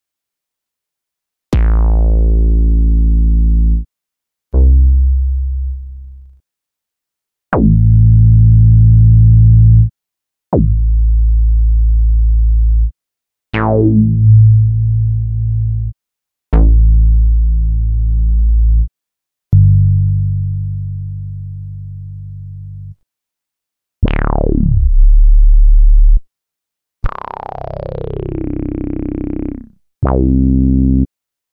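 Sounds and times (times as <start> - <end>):
various bass samples: 1.5 - 3.9, 4.5 - 6.4, 7.5 - 9.9, 10.5 - 12.9, 13.6 - 18.9, 19.5 - 23.0, 24.0 - 26.3, 27.0 - 31.1.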